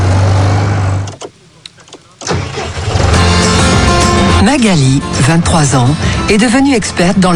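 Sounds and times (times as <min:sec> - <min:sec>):
market-garden tractor engine running: 0:00.0 - 0:06.4
clunks: 0:01.0 - 0:03.2
speech: 0:04.4 - 0:07.3.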